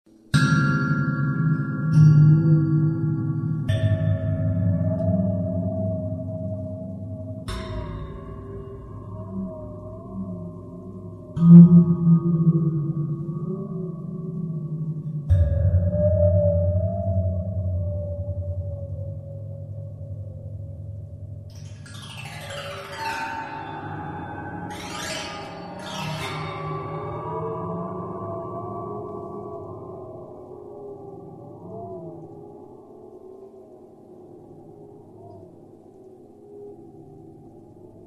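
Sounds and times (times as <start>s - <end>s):
waterphone played by finger: 0.4s - 20.4s, 21.5s - 30.5s.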